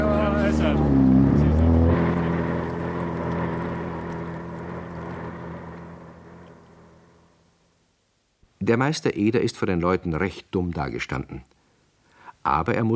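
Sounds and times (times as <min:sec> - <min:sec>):
motorboat engine droning while towing a sailboat: 0:00.0 - 0:07.5
speech: 0:08.7 - 0:11.6, 0:12.4 - 0:12.9.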